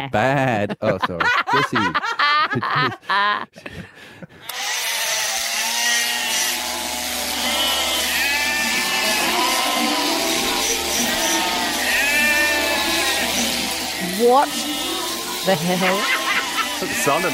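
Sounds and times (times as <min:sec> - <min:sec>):
speech: 0:00.0 - 0:04.6, 0:14.2 - 0:14.7, 0:15.4 - 0:16.2, 0:16.8 - 0:17.3
laughter: 0:00.2 - 0:04.4, 0:15.5 - 0:17.3
dense chorus of sheep bleating: 0:05.0 - 0:17.3.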